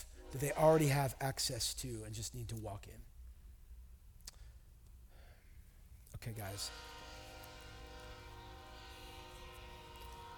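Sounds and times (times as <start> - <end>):
train horn blast: 0.0 - 1.2, 6.3 - 10.3
speech: 0.3 - 3.1, 6.2 - 7.0.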